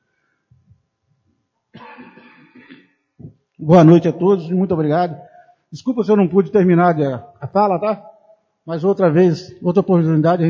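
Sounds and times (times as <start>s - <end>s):
person with a sore throat coughing: 1.8s - 2.9s
soft throaty sounds: 1.8s - 3.5s
speech: 3.6s - 8.1s, 8.7s - 10.4s.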